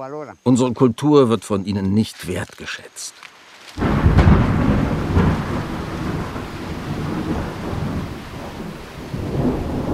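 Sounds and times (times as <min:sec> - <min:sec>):
speech: 0:00.0 - 0:04.3
heavy steady rain downpour in a cloudburst: 0:03.8 - 0:09.9
sudden crack of thunder: 0:03.8 - 0:09.9.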